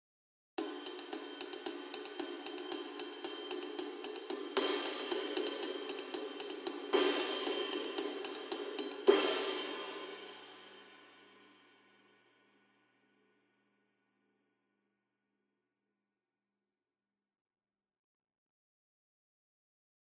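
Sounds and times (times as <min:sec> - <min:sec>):
Custom Pointer 22 flat ride cymbal: 0:00.6 - 0:12.2.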